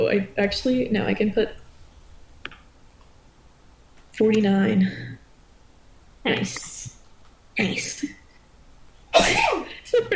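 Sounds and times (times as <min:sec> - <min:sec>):
speech: 0:00.0 - 0:01.6, 0:04.2 - 0:05.2, 0:06.2 - 0:06.7, 0:07.6 - 0:08.2, 0:09.2 - 0:10.1
sneeze: 0:09.1 - 0:09.7.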